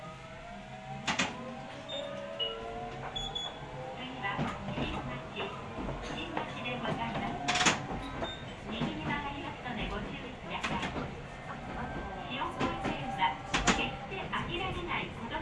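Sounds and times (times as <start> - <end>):
vehicle sliding door whirring and closing with sharp clunks: 0.1 - 9.5, 10.4 - 15.3
voices: 2.9 - 15.3.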